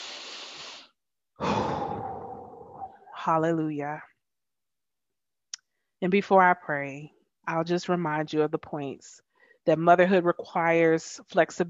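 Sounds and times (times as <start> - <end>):
slow deep breath during a sermon: 0.0 - 3.1
speech: 3.2 - 4.1, 6.0 - 11.6.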